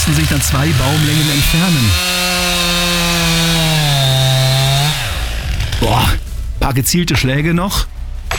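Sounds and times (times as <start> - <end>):
chainsaw felling a tree, cutting into the trunk: 0.0 - 6.2
speech: 0.1 - 2.3, 5.8 - 8.0.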